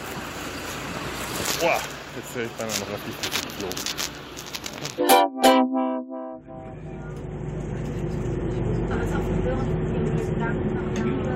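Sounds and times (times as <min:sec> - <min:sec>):
city bus interior rumble and hum with droning engine: 0:00.0 - 0:11.3
speech: 0:01.6 - 0:04.2, 0:04.8 - 0:05.8, 0:09.6 - 0:11.3
harmonic horn-like tone on a city bus: 0:05.0 - 0:07.1.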